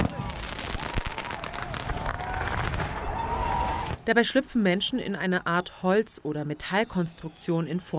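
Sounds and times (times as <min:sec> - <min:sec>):
fireworks and firecrackers exploding at a New Year bull-fireworks tradition in Mexico: 0:00.0 - 0:04.0
noisy outdoor crowd in Mexico: 0:00.0 - 0:07.9
speech: 0:04.0 - 0:07.9.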